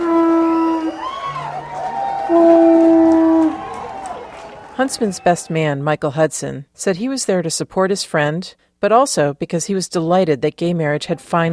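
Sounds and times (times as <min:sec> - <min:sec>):
conch shell blown at a wedding to greet the newly married couple: 0:00.0 - 0:01.4, 0:02.0 - 0:04.2
crowd cheering and applauding at a wedding: 0:00.0 - 0:05.6
speech: 0:04.8 - 0:11.5.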